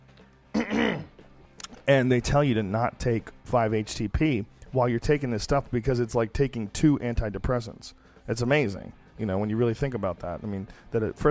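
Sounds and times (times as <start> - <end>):
man clearing throat with a rough cough: 0.5 - 1.2
speech: 1.9 - 11.2.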